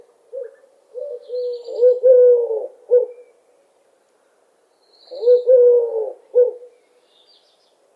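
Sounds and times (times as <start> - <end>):
Eurasian collared dove cooing: 0.3 - 3.3, 5.1 - 6.8.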